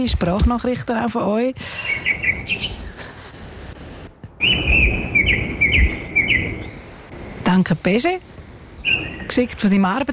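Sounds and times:
speech: 0:00.0 - 0:02.9, 0:07.5 - 0:08.3, 0:08.9 - 0:10.1
birds singing outdoors: 0:01.8 - 0:03.2, 0:04.4 - 0:07.1, 0:08.6 - 0:10.0.

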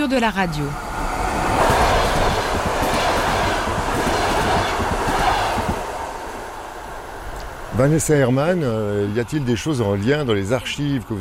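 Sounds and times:
speech: 0:00.0 - 0:00.8, 0:07.8 - 0:11.1
train passing by: 0:00.0 - 0:11.1
train wheels clickety-clack: 0:01.0 - 0:08.6.

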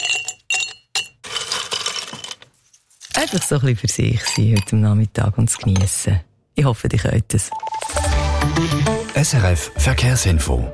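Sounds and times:
ice cube clinking against a glass of Campari: 0:00.0 - 0:02.4, 0:03.0 - 0:04.8
speech: 0:03.2 - 0:07.7, 0:08.4 - 0:10.7.

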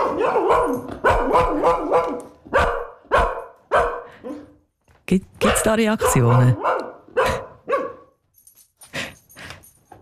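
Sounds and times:
dog barking: 0:00.0 - 0:04.6, 0:05.4 - 0:08.2
speech: 0:05.1 - 0:06.8.

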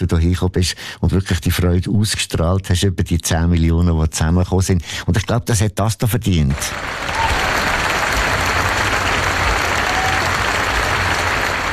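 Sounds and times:
speech: 0:00.1 - 0:07.4
applause from a large audience: 0:06.5 - 0:11.7.

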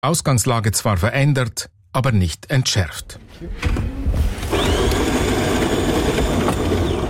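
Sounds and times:
speech: 0:00.0 - 0:04.6
brand-new coffee machine grinding in broadcaster editorial offices in Daugavpils: 0:04.5 - 0:07.0.

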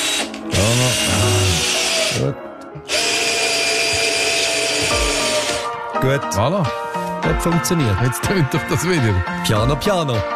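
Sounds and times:
power drill whining while screwing and cutting: 0:00.0 - 0:05.8
speech: 0:02.2 - 0:02.9, 0:06.0 - 0:10.3.

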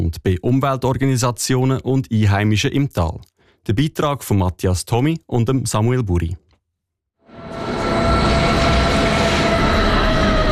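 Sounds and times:
speech: 0:00.0 - 0:06.4
cog railway train from Wengen rumbling into Eigergletscher station: 0:07.3 - 0:10.5.

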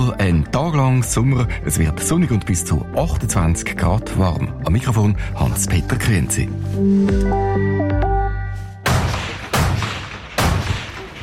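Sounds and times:
speech: 0:00.1 - 0:07.7
short burst of electronic musical tones: 0:06.6 - 0:08.8
rifle shots at youth shooting competition shoot-off: 0:08.8 - 0:11.2.

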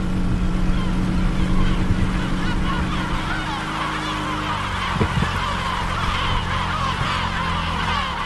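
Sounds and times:
boat engine rumbling heading toward the island: 0:00.0 - 0:08.2
chorus of gulls calling above an island at sunrise: 0:00.0 - 0:08.2
wind: 0:00.0 - 0:08.2.

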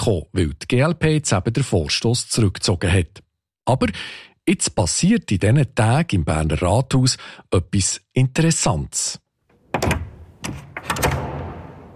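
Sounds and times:
speech: 0:00.0 - 0:09.2, 0:09.8 - 0:10.7
heavy wooden door banging shut: 0:09.6 - 0:11.9.

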